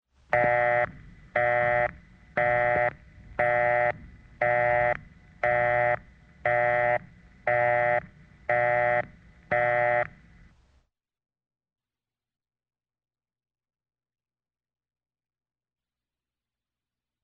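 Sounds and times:
telephone busy signal: 0.4s - 10.1s.

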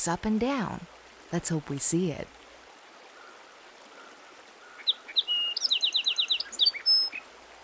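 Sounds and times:
speech: 0.0s - 2.4s
song sparrow singing a bright clear song with buzzy trill: 4.7s - 7.2s.

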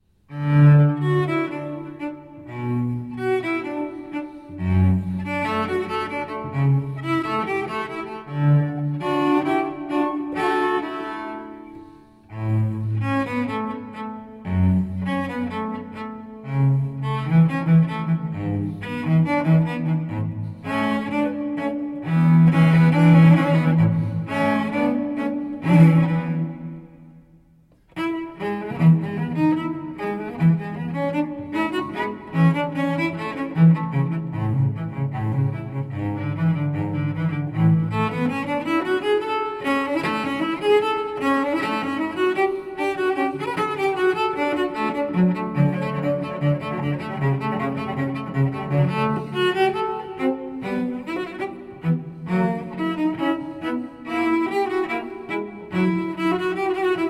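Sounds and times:
solo cello sonata andante: 0.0s - 57.0s.

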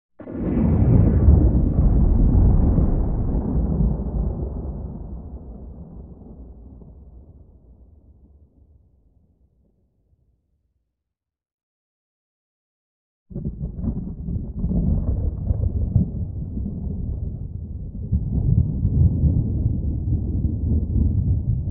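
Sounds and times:
eerie distant thunder clap with long tail: 0.2s - 7.6s, 13.3s - 21.6s.

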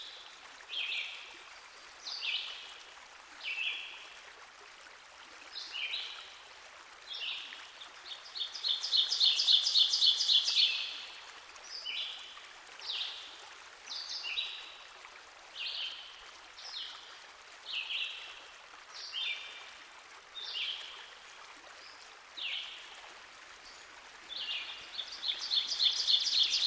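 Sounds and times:
rushing water of a stream: 0.0s - 26.6s
ovenbird song: 8.1s - 10.9s, 24.4s - 26.6s.

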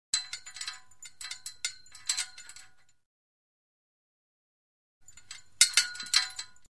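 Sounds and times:
flag pole metal clanks: 0.2s - 2.9s, 5.1s - 6.6s.

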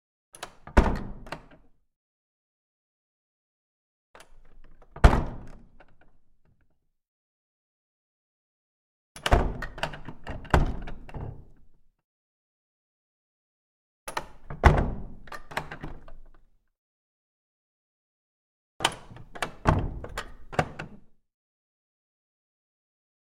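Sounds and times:
small wooden door with latch: 0.3s - 1.8s, 4.2s - 6.8s, 9.2s - 11.9s, 14.1s - 16.6s, 18.8s - 21.2s.

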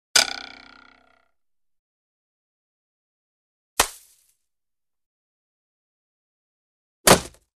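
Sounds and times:
arrow wobbling in target: 0.2s - 1.3s
arrow hitting target in archery: 3.8s - 4.2s, 7.1s - 7.4s.

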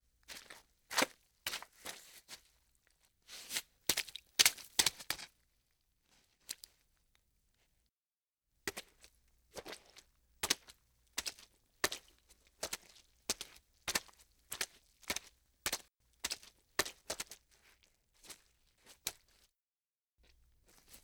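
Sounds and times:
footsteps squishing and slapping in wet mud: 3.5s - 5.3s, 9.6s - 19.4s.

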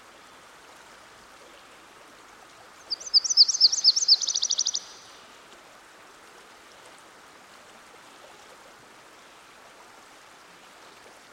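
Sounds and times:
soft background hiss: 0.0s - 11.3s
myrtle warbler singing a high trill by a stream: 2.9s - 5.0s.

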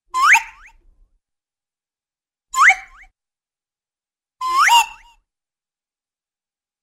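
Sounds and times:
slide whistle: 0.1s - 0.8s, 2.6s - 3.1s, 4.4s - 5.2s.

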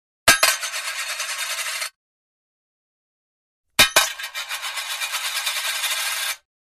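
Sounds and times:
coin dropping and spinning: 0.3s - 2.0s, 3.8s - 6.5s.

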